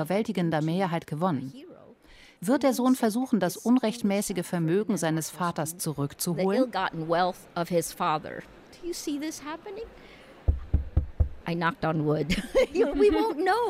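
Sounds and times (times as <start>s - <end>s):
speech: 0.0s - 1.7s, 2.4s - 10.2s, 11.5s - 13.6s
dull hollow knocking on wood: 10.5s - 11.4s.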